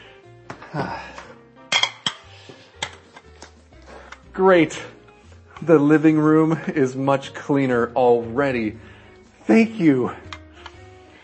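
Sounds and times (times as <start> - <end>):
speech: 0.7 - 1.1, 4.4 - 5.0, 5.6 - 8.9, 9.5 - 10.3
dirty ceramic dishes clinking as they're carried to the kitchen: 1.7 - 3.2.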